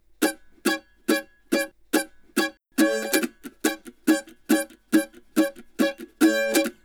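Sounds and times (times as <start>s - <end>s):
country mandolin verse: 0.1s - 6.8s.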